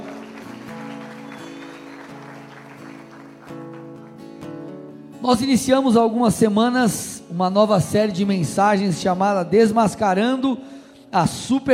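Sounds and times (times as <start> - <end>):
audience applause: 0.0 - 4.4
speech: 5.2 - 11.7.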